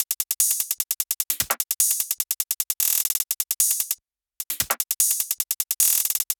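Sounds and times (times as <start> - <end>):
future bass drum loop: 0.0 - 0.8, 1.4 - 2.2, 2.8 - 6.3.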